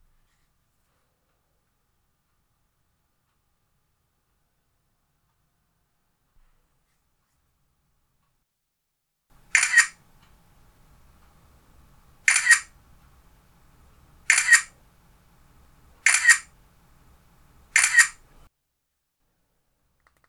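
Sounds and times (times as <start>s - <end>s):
iPhone 6 camera shutter taking a picture: 9.4s - 18.5s.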